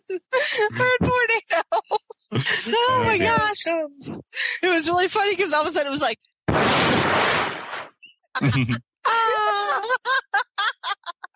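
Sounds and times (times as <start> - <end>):
speech: 0.1 - 1.8, 2.8 - 7.3, 8.4 - 11.0
laughter: 0.7 - 3.4, 8.4 - 11.3
short choppy gasping bursts: 2.3 - 2.8
heavy breathing: 2.3 - 2.9.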